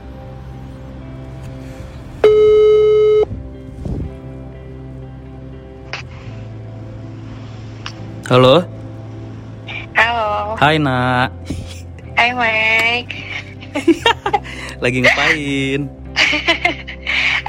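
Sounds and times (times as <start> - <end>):
telephone ringback tone: 2.2 - 3.3
speech: 8.3 - 8.8, 10.6 - 11.6, 12.2 - 16.8
laughter: 13.2 - 17.4.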